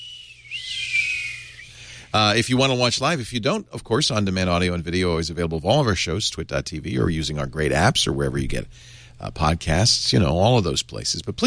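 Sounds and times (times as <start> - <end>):
person whistling a sustained high note: 0.0 - 2.1
speech: 2.1 - 11.4.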